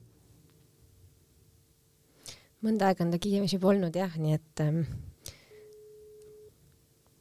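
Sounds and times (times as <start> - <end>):
speech: 2.6 - 5.1
telephone ringback tone of an outgoing call: 5.5 - 6.5.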